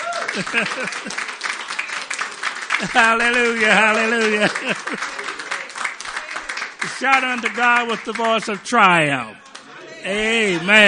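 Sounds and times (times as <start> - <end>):
congregation clapping hands: 0.0 - 10.8
laughter: 0.0 - 10.8
speech: 0.4 - 1.4, 2.8 - 5.4, 6.9 - 9.4, 10.0 - 10.8
congregation voices calling out: 2.8 - 10.8.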